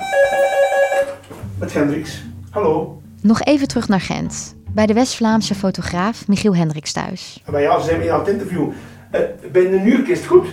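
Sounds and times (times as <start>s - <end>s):
telephone ringing with a steady electronic tone in a home in Ghent: 0.0s - 1.3s
speech: 1.6s - 10.5s.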